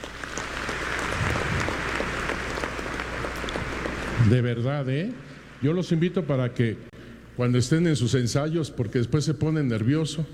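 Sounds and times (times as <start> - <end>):
crowd applauding for music teachers and children: 0.0 - 4.4
speech: 4.3 - 10.3.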